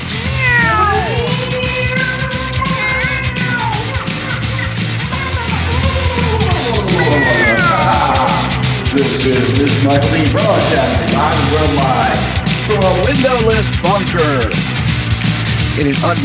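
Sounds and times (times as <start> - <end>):
cat meowing: 0.1 - 8.5
laughter: 3.9 - 14.5
speech: 9.3 - 14.6, 15.8 - 16.2.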